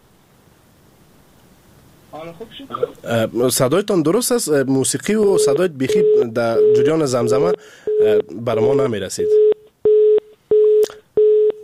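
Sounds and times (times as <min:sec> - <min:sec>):
speech: 0:02.1 - 0:09.5
telephone busy tone after a dropped call: 0:05.4 - 0:08.3, 0:09.2 - 0:11.6.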